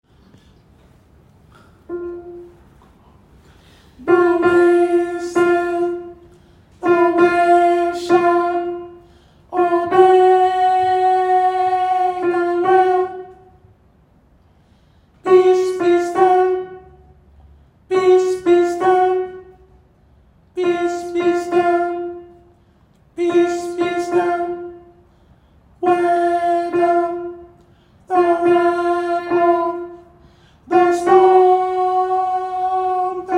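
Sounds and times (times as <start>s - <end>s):
soprano singing gospel: 4.0s - 13.5s, 15.2s - 17.0s, 17.9s - 19.5s, 20.6s - 22.4s, 23.1s - 25.0s, 25.8s - 33.3s.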